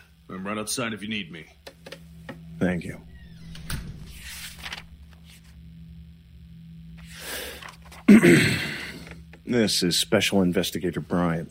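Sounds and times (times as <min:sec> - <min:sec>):
speech: 0:00.3 - 0:01.7, 0:02.6 - 0:03.1, 0:08.1 - 0:08.7, 0:09.5 - 0:11.4
door pushed shut with a firm thud: 0:03.2 - 0:04.6.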